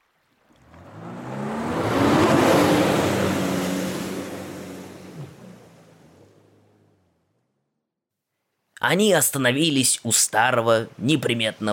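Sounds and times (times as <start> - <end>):
two rented motor scooter engines revving: 0.6 - 6.0
speech: 8.8 - 11.7.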